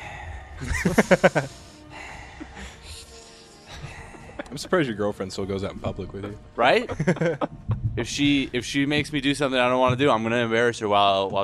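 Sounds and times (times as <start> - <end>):
voice imitating exaggerated heavy breathing: 0.0 - 4.6
laughter: 0.6 - 1.6, 3.7 - 8.7
speech: 0.6 - 1.7, 4.5 - 11.4.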